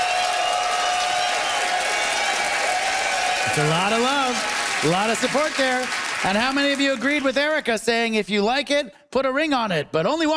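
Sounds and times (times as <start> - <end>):
live audience whooping: 0.0 - 5.9
live audience applauding: 0.0 - 8.2
speech: 3.4 - 10.3.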